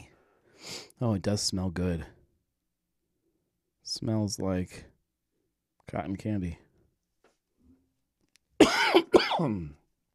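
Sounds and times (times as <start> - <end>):
speech: 1.0 - 2.2, 3.9 - 4.9, 5.9 - 6.6, 8.9 - 9.8
harsh coughs: 8.6 - 9.8.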